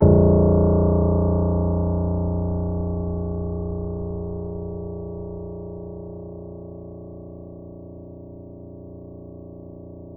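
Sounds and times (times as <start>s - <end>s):
soft grand piano note A sharp minus one: 0.0s - 7.4s.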